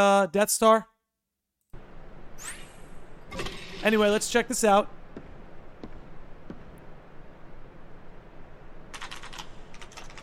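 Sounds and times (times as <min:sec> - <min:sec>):
speech: 0:00.0 - 0:00.9, 0:03.3 - 0:05.0
typing on a computer keyboard in a video game: 0:08.9 - 0:10.2.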